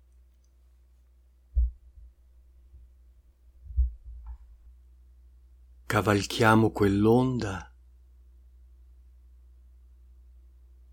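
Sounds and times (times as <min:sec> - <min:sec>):
faint hum: 0:00.0 - 0:10.9
slow heartbeat with deep low thumps: 0:01.5 - 0:02.2, 0:03.6 - 0:04.6
speech: 0:06.0 - 0:07.7.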